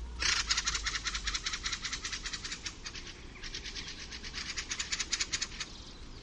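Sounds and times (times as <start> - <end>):
fieldfare harsh chack calls: 0.2 - 5.8.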